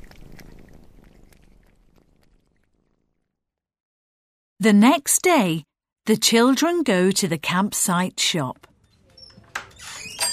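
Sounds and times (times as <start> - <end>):
kittens clicking and crunching dog food: 0.0 - 3.3
speech: 4.6 - 8.7.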